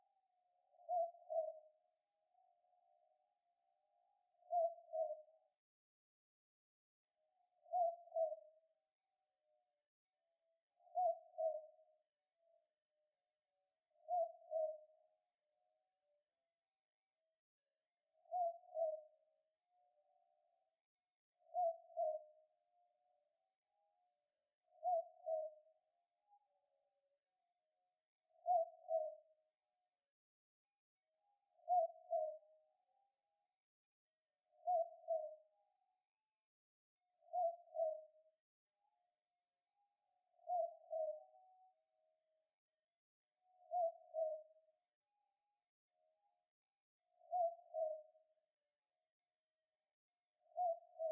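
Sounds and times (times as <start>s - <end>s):
Boobook owl calling: 0.8s - 1.6s, 4.5s - 5.2s, 7.7s - 8.5s, 10.9s - 11.6s, 14.1s - 14.8s, 21.5s - 22.3s, 24.8s - 25.6s, 28.4s - 29.2s, 31.6s - 32.4s, 34.6s - 35.3s, 37.3s - 38.1s, 40.5s - 41.2s, 43.7s - 44.5s, 47.2s - 48.0s, 50.6s - 51.1s.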